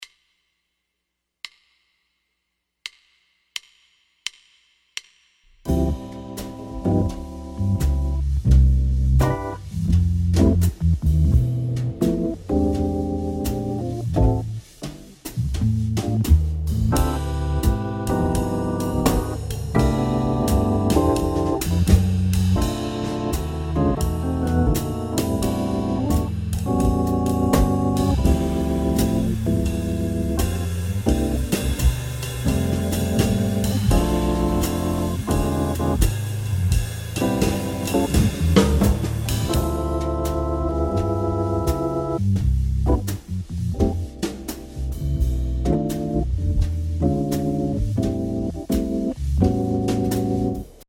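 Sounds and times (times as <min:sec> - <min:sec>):
jazz guitar soundtrack in A minor: 0:05.7 - 0:50.8.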